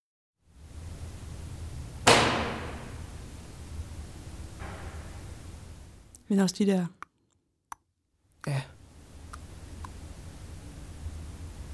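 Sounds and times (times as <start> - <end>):
steady low hum: 0.5 - 7.2, 8.2 - 11.7
cabinet door slamming shut: 2.1 - 3.1
speech: 6.3 - 7.0.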